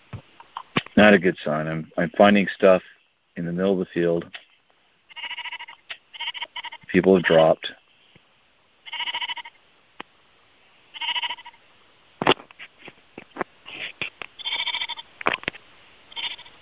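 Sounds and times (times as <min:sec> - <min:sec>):
speech: 0:01.0 - 0:04.4, 0:06.9 - 0:07.8
sheep bleating: 0:05.1 - 0:07.6, 0:08.8 - 0:09.6, 0:10.9 - 0:11.6, 0:14.4 - 0:15.0, 0:16.1 - 0:16.5.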